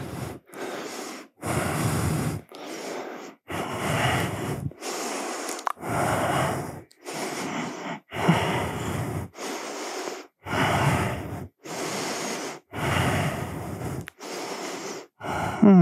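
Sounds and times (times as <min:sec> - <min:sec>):
deep breathing during a yoga pose: 0:00.0 - 0:15.8.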